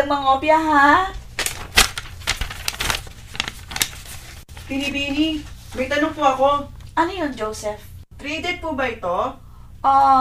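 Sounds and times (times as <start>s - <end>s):
speech: 0.1s - 1.2s, 4.7s - 10.2s
paper crinkling: 1.2s - 6.1s
paper being torn into half sheets: 1.3s - 4.7s.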